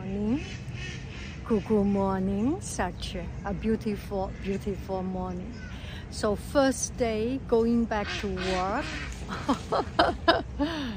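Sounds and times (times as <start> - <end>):
speech: 1.5 - 10.9
ducks quacking: 8.0 - 9.4.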